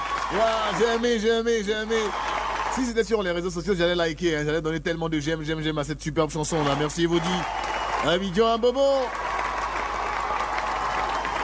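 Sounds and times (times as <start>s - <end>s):
audience applauding after a song performance: 0.0s - 3.0s, 6.6s - 11.4s
speech: 0.3s - 9.2s.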